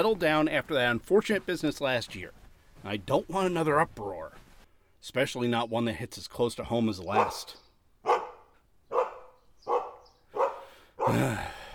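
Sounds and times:
speech: 0:00.0 - 0:04.4, 0:05.0 - 0:07.6, 0:11.1 - 0:11.6
dog barking: 0:07.1 - 0:11.2.

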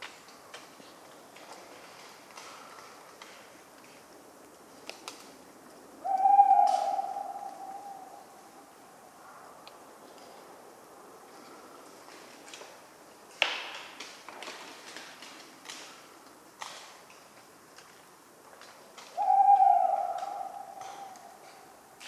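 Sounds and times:
tawny owl hooting on a cold autumn night: 0:06.0 - 0:08.8, 0:19.1 - 0:22.0.

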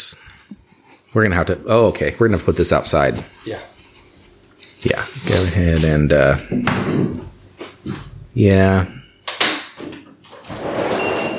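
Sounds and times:
speech: 0:01.2 - 0:03.7, 0:04.8 - 0:09.0
sliding patio door opening with a knock and rolling slide: 0:10.3 - 0:11.3.

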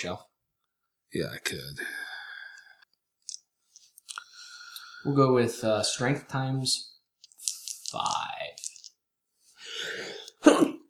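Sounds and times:
speech: 0:00.0 - 0:00.3, 0:01.1 - 0:02.1, 0:05.0 - 0:06.9, 0:07.9 - 0:08.6
person sneezing with breathy drawn-in buildup: 0:10.0 - 0:10.8.

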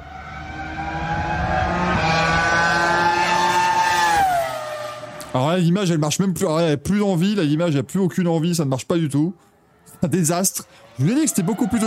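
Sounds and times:
Formula 1 race car engine screaming at high revs: 0:00.0 - 0:05.4, 0:09.8 - 0:11.8
speech: 0:05.4 - 0:11.8.

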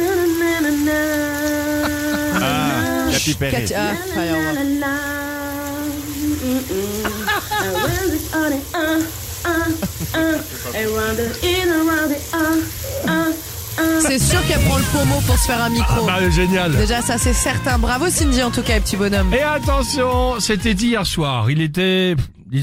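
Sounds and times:
woman singing loudly: 0:00.0 - 0:20.2
shower water running: 0:00.0 - 0:20.5
laughter: 0:01.6 - 0:04.8, 0:06.8 - 0:08.2, 0:09.6 - 0:11.1, 0:13.8 - 0:16.5
speech: 0:03.2 - 0:05.3, 0:06.2 - 0:13.2, 0:14.0 - 0:22.6.

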